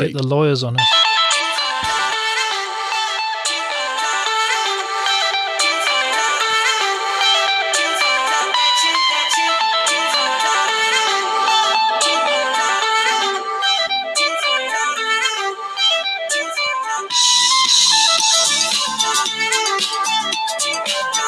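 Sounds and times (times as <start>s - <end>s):
speech: 0.0s - 1.0s
song playing through a small phone speaker: 0.0s - 21.2s.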